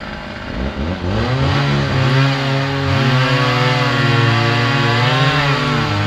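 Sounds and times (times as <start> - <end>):
chainsaw cutting down: 0.0 - 6.0.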